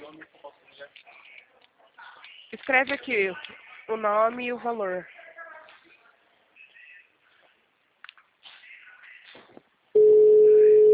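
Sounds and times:
speech: 2.6 - 5.1
telephone ringback tone while a call connects: 10.0 - 10.9.

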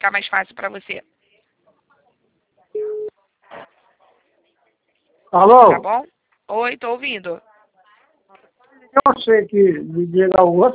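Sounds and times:
speech: 0.0 - 1.2, 5.3 - 7.5, 8.3 - 10.7
bank registration confirmation tone on a phone call: 2.8 - 3.1.

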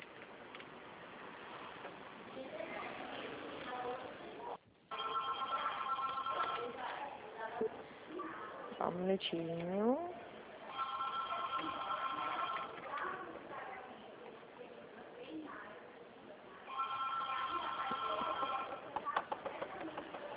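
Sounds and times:
faint murmur: 0.0 - 20.3
telephone ringing with rapid trilling electronic tones: 4.9 - 6.8, 10.7 - 12.8, 16.7 - 18.9
speech: 9.0 - 10.1.

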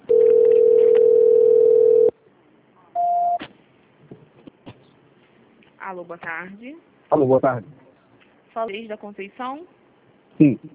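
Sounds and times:
telephone ringback tone during call transfer: 0.1 - 2.1
speech: 5.9 - 7.8, 8.6 - 9.8, 10.4 - 10.7.

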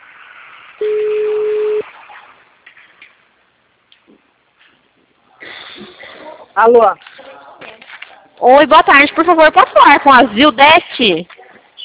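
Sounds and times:
ringing tone on an outgoing phone call: 0.8 - 1.8
speech: 6.6 - 7.0, 8.4 - 11.3.

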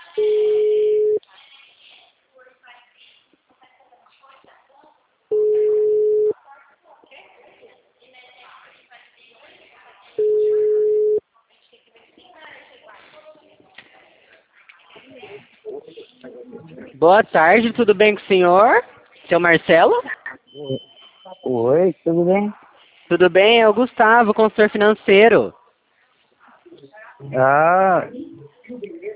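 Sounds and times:
telephone ringback tone while calling someone: 0.2 - 1.2, 5.3 - 6.3, 10.2 - 11.2
speech: 17.0 - 20.9, 21.5 - 25.6, 26.8 - 28.2.

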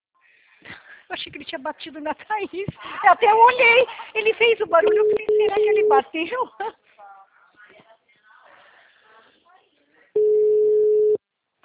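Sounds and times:
speech: 1.2 - 7.0
telephone busy signal: 10.2 - 11.2.

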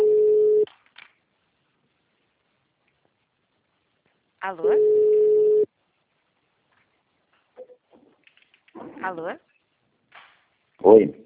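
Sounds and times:
telephone hold tone beep on a call: 0.0 - 0.6, 4.7 - 5.7
speech: 4.5 - 5.0, 9.0 - 9.5, 10.8 - 11.2.

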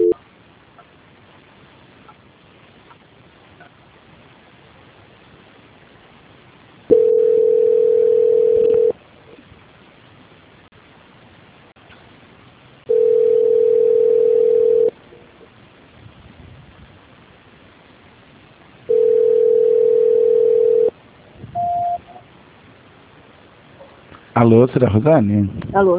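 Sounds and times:
faint telephone line hiss: 0.0 - 25.9
telephone line tones during a call transfer: 6.9 - 8.9, 12.9 - 14.9, 18.9 - 20.9, 21.6 - 22.1
short high beep: 21.6 - 22.2
speech: 24.4 - 25.9.

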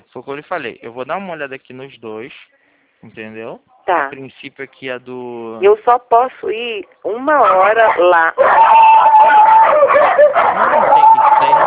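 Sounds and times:
speech: 0.1 - 11.6
several dogs barking and yelping with whining: 6.9 - 11.6.

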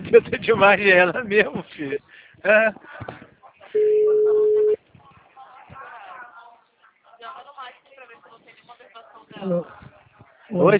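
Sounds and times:
speech: 0.1 - 3.9, 9.4 - 9.8, 10.5 - 10.7
telephone busy tone as a call drops: 3.8 - 4.8.

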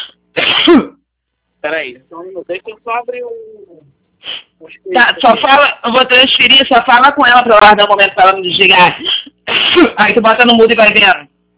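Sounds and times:
person coughing harshly from allergy during a phone call: 0.4 - 1.0, 9.0 - 10.0
rough choppy throat clearing and hacking: 0.4 - 1.0
speech: 0.7 - 0.9, 1.7 - 9.2, 9.8 - 11.3.

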